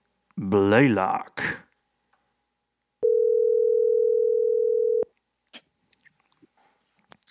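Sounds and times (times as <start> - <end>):
speech: 0.5 - 1.6
phone ringback tone: 3.0 - 5.1
soft handling noises: 5.9 - 7.2.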